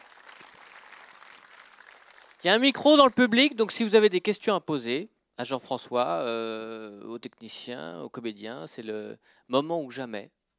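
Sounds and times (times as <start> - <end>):
audience applauding: 0.0 - 2.7
speech: 2.4 - 10.4.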